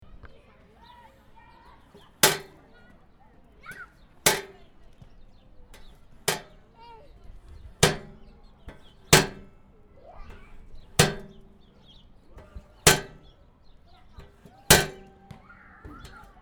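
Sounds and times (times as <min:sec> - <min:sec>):
rubbish bin in a square: 0:01.9 - 0:02.6, 0:03.7 - 0:04.8, 0:07.4 - 0:13.3, 0:14.0 - 0:16.4.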